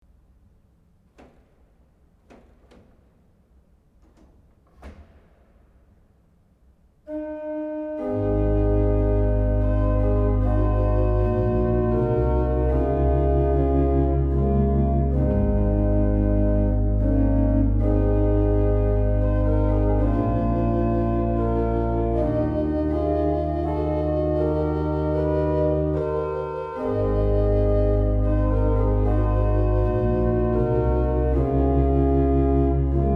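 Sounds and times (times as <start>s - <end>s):
organ Rohrflute 8 and Viola Di Gamba 8 stops with tremulant: 7.1s - 33.1s.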